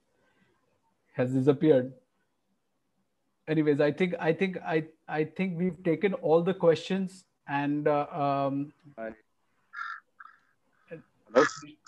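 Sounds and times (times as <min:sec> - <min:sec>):
speech: 0:01.2 - 0:02.0, 0:03.5 - 0:09.2, 0:10.9 - 0:11.8
crows cawing: 0:09.7 - 0:10.5, 0:11.4 - 0:11.6.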